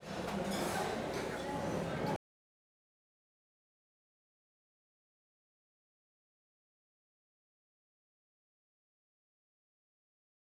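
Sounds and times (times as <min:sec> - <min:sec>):
busy dining room in Europe: 0:00.0 - 0:02.2.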